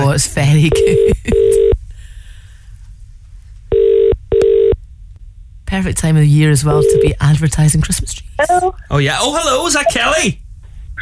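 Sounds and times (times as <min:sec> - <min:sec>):
speech: 0:00.2 - 0:01.6, 0:05.7 - 0:10.4
telephone double-ring ringing tone over the line: 0:03.7 - 0:04.8.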